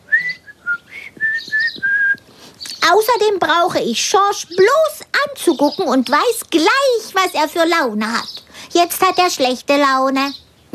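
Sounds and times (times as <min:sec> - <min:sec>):
person whistling a short bright melody: 0:00.1 - 0:02.2
speech: 0:02.9 - 0:10.7.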